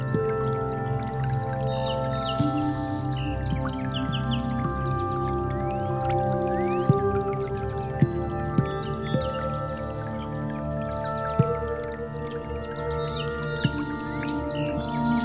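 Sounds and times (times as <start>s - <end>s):
gentle chimes: 0.0s - 15.2s
soft bird chirps: 0.0s - 15.2s.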